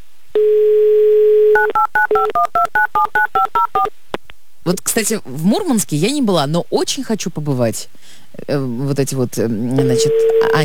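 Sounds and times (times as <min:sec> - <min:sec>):
telephone dial tone: 0:00.4 - 0:02.0, 0:09.8 - 0:10.6
speech: 0:02.2 - 0:04.0, 0:04.7 - 0:10.6.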